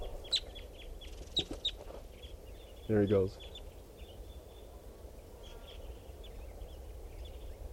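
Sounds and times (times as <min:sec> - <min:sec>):
faint bird chirps: 0:00.0 - 0:07.7
low outdoor background: 0:00.0 - 0:07.7
speech: 0:02.9 - 0:03.5.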